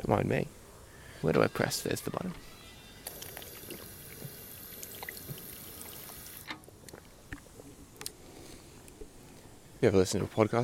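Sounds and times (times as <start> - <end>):
speech: 0.1 - 0.6, 1.2 - 2.5, 9.8 - 10.6
rushing water stream of a public drinking fountain: 3.0 - 6.5.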